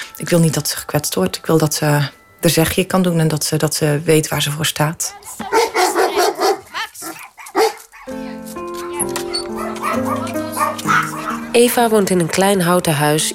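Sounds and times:
steady music with sustained tones: 0:00.0 - 0:04.0, 0:08.1 - 0:13.3
speech: 0:00.2 - 0:05.6, 0:11.6 - 0:13.3
dogs barking: 0:05.1 - 0:12.4.

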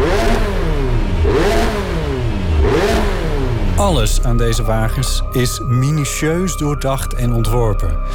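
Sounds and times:
race car engine revving hard: 0:00.0 - 0:05.2
speech: 0:04.0 - 0:08.1.

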